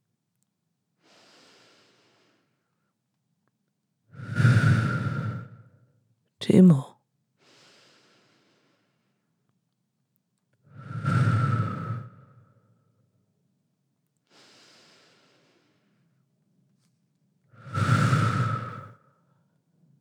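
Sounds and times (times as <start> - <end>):
slow deep breathing: 1.0 - 2.8, 4.1 - 5.9, 7.4 - 9.3, 10.6 - 13.0, 14.3 - 16.3, 17.6 - 19.4
speech: 6.4 - 6.9.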